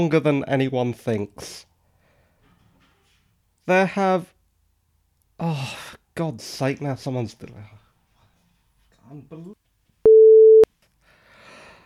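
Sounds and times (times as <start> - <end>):
speech: 0.0 - 1.7, 3.7 - 4.3, 5.4 - 7.8, 9.1 - 9.6
phone ringing with an electronic tone: 10.1 - 10.7.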